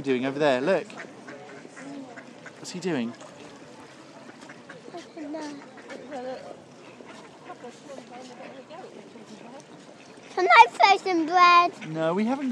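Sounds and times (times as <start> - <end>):
speech: 0.0 - 1.2, 2.6 - 3.3, 7.6 - 12.5
outdoor water ambience: 0.0 - 12.5
ducks quacking near swans: 0.4 - 8.9, 9.8 - 12.5.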